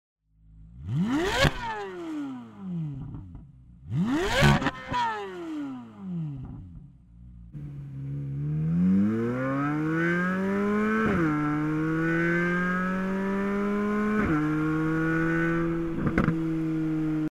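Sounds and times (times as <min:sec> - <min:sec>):
Chevy Z06 engine: 0:00.4 - 0:17.2.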